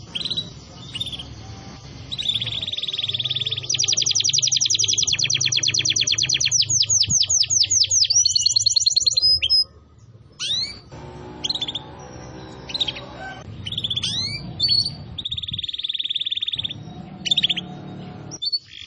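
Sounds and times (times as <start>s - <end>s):
canary song used as a lure: 0.0s - 18.8s
steady low hum: 9.8s - 15.3s, 16.6s - 18.4s.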